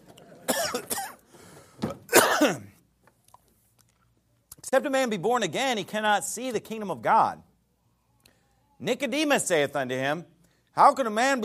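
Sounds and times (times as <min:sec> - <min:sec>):
cough drop being taken: 0:00.5 - 0:01.2, 0:02.1 - 0:02.8
raspy throat clearing: 0:00.5 - 0:01.2, 0:02.1 - 0:02.8
person coughing: 0:00.5 - 0:01.3, 0:02.0 - 0:02.8
speech: 0:02.5 - 0:02.7, 0:04.7 - 0:07.5, 0:08.8 - 0:11.4.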